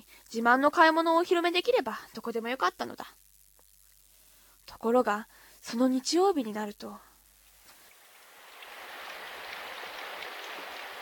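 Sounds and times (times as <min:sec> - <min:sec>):
speech: 0:00.3 - 0:03.2, 0:04.7 - 0:07.1
rain falling: 0:07.4 - 0:10.9.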